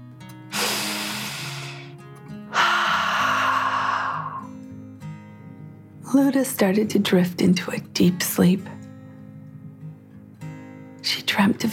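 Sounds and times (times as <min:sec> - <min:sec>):
deep breath in and out: 0:00.5 - 0:04.5
speech: 0:06.1 - 0:08.8, 0:11.4 - 0:11.7.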